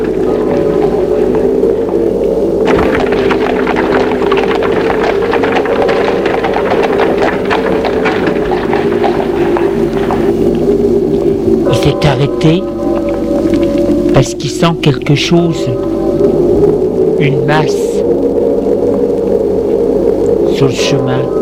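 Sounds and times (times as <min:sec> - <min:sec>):
loud steady low drone: 0:00.0 - 0:21.4
horse hooves clip-clopping on a path: 0:02.7 - 0:11.4
speech: 0:14.2 - 0:16.4, 0:17.2 - 0:18.3, 0:20.6 - 0:21.4.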